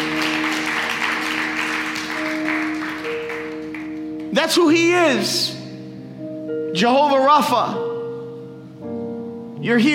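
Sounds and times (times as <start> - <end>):
audience clapping: 0.0 - 4.4
speech: 4.3 - 5.6, 6.8 - 7.9, 9.6 - 9.9.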